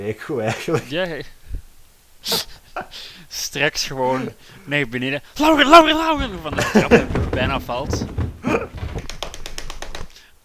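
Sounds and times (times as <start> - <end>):
speech: 0.0 - 1.4, 2.2 - 8.7
knocking on a door: 5.7 - 9.4.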